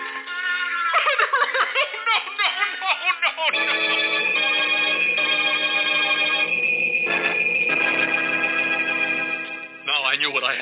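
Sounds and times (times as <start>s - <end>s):
laughter: 0.0s - 4.3s
bells ringing: 3.5s - 10.6s.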